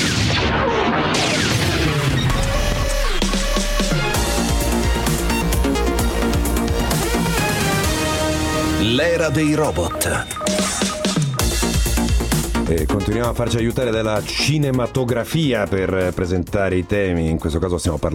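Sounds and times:
gunfire from a film battle scene: 0.0 - 2.4
dense orchestral film score: 2.3 - 16.0
speech: 9.0 - 10.9, 12.7 - 18.1.

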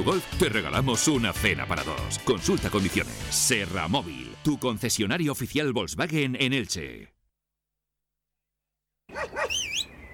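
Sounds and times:
speech: 0.0 - 7.2
happy dog barking: 9.1 - 9.8
happy dog giving a high wavering whine-like yelp: 9.1 - 9.9.

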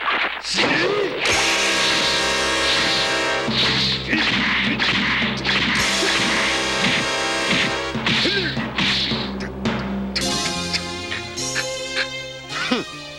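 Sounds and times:
whooshing swings in a fight: 0.0 - 9.6
loud dense dramatic music: 1.2 - 13.1
punches landing in a fight: 2.7 - 10.9.

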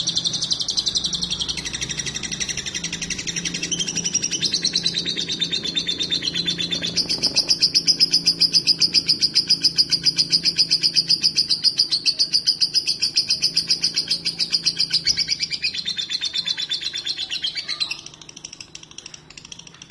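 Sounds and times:
lovebird shrill rapid chirping calls: 0.0 - 19.9.

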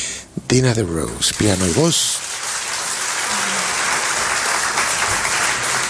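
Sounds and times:
speech: 0.5 - 2.3
audience applause at a live concert: 1.2 - 5.8.

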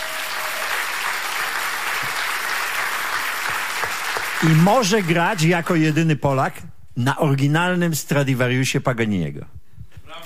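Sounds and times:
audience applause honouring a violinist: 0.0 - 6.1
speech: 4.4 - 9.6.

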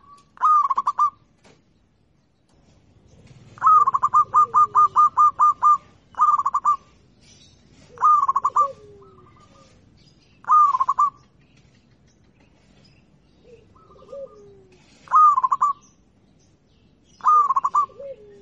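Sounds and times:
local-type zebra dove cooing: 0.0 - 1.3, 2.9 - 7.0, 7.7 - 11.4, 13.4 - 15.9, 17.2 - 18.4.

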